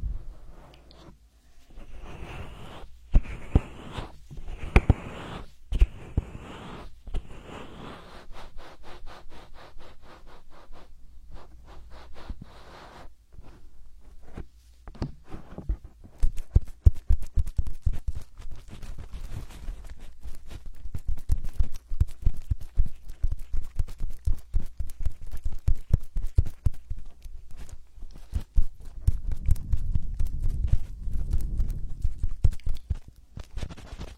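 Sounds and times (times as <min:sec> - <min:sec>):
low muffled rubbing of a hand massage: 0:00.1 - 0:13.6, 0:15.7 - 0:34.1
patting and tapping in a hand massage: 0:02.5 - 0:06.4, 0:14.3 - 0:34.1.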